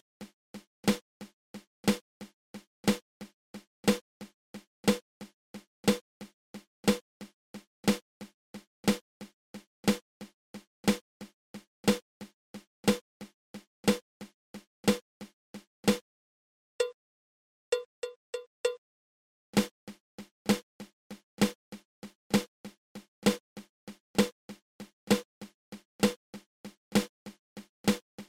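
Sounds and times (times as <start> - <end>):
drum flam accent: 0.8 - 1.0, 1.8 - 2.0, 2.8 - 3.0, 3.8 - 4.0, 4.8 - 5.0, 5.8 - 7.0, 7.8 - 8.0, 8.8 - 9.0, 9.8 - 10.0, 10.8 - 14.0, 14.8 - 15.0, 20.5 - 27.1, 27.8 - 28.2.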